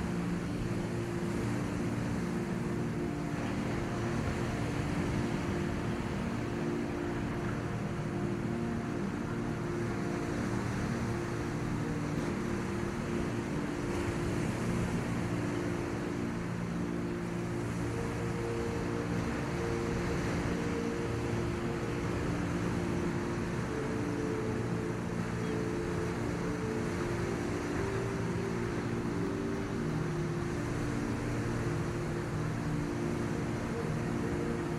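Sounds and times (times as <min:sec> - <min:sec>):
ocean waves: 0:00.0 - 0:34.7
soft sustained low music: 0:00.0 - 0:34.7.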